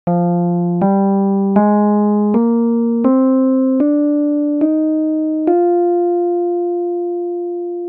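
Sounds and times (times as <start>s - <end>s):
F Dorian scale played: 0.1s - 7.8s.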